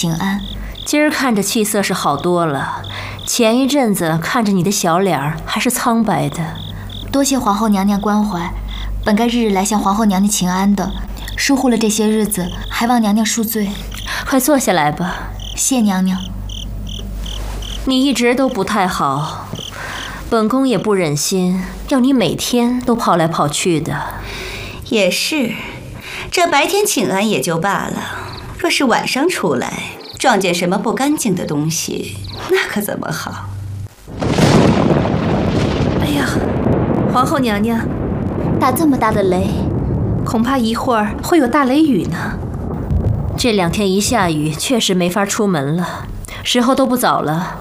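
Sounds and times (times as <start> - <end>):
speech: 0.0 - 16.4, 17.8 - 19.4, 20.3 - 33.5, 37.2 - 38.0, 38.6 - 42.4, 43.4 - 47.5
loud thunder: 34.1 - 45.4.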